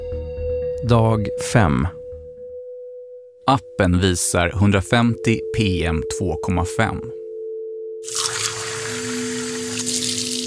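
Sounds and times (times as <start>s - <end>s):
speech: 0.8s - 2.0s, 3.5s - 7.2s
faint ringing tone: 2.4s - 10.4s
water gushing into a glass: 8.0s - 10.4s.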